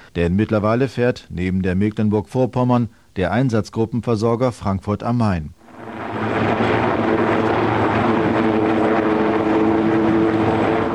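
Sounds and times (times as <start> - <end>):
speech: 0.2 - 5.6
ship-based naval helicopter rotor and engine drone at sea: 5.6 - 10.9.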